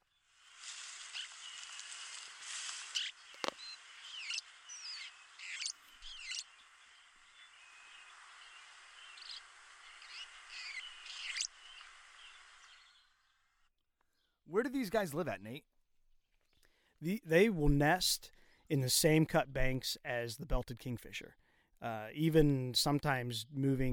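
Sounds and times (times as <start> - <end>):
steady hissy background: 0.0 - 13.2, 14.5 - 15.6, 17.0 - 23.9
northern rough-winged swallow singing: 0.8 - 13.2
speech: 14.5 - 15.7, 17.0 - 23.9.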